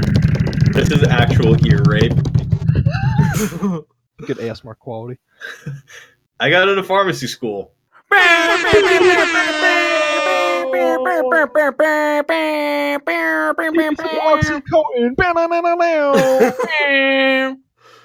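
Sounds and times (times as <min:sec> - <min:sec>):
speech: 0:00.8 - 0:02.4, 0:03.4 - 0:17.6
laughter: 0:02.9 - 0:03.8, 0:08.1 - 0:12.7, 0:16.1 - 0:17.4
voice imitating air horn blasts: 0:08.1 - 0:14.6.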